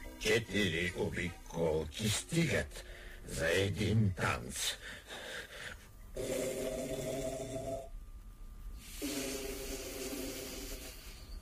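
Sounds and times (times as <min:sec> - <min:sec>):
speech: 0:00.2 - 0:05.0, 0:06.2 - 0:07.1
loud rattling snoring: 0:06.2 - 0:07.9, 0:09.0 - 0:11.2.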